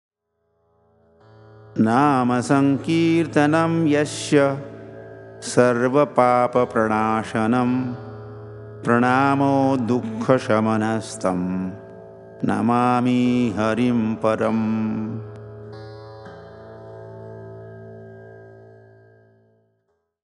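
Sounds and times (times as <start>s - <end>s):
person chanting a tuned shloka: 1.6s - 15.6s.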